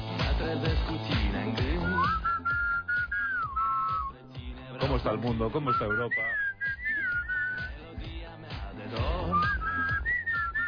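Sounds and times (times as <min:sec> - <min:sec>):
speech: 0:00.5 - 0:01.2, 0:05.0 - 0:06.5
person whistling a wavering bright melody: 0:01.7 - 0:04.3, 0:05.6 - 0:07.8, 0:09.1 - 0:10.6.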